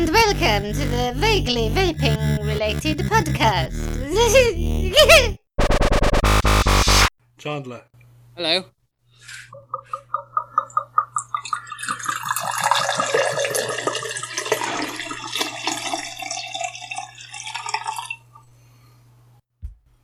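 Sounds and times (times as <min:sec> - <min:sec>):
speech: 0:00.0 - 0:05.4, 0:07.4 - 0:10.3
low hum: 0:00.0 - 0:07.1
whiskey glugging from a new bottle: 0:09.5 - 0:15.0
whiskey splashing pour: 0:09.8 - 0:18.2.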